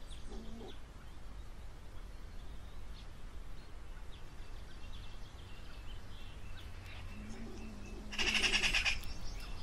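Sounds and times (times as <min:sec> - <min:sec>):
European pine marten: 0:00.2 - 0:00.9, 0:06.6 - 0:09.5.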